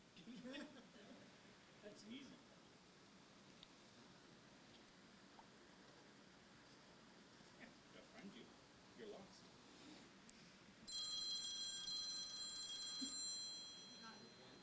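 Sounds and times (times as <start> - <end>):
low murmur of room noise: 0.0 - 14.6
phone ringing with a bright high electronic ringtone for an incoming call: 10.9 - 14.6.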